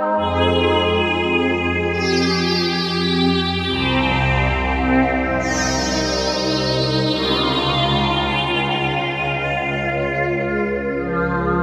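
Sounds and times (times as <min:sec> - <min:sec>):
classic sweeper on a Novation UltraNova synthesizer: 0:00.2 - 0:11.5.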